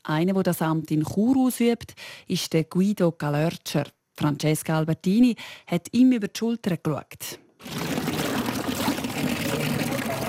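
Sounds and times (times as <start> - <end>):
speech: 0.0 - 8.0
water splashing from an old drinking-water fountain in Chur: 7.7 - 10.2.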